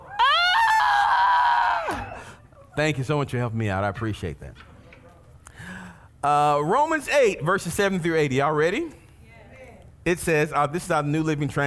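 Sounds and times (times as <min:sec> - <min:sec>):
audience screaming together: 0:00.0 - 0:02.4
speech: 0:02.8 - 0:04.7, 0:06.2 - 0:09.0, 0:10.0 - 0:11.6.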